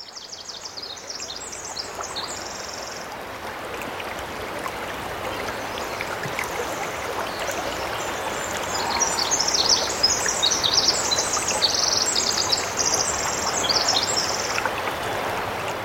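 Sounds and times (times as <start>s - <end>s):
stream rushing in a rainforest on Chichagof Island: 1.3s - 15.8s.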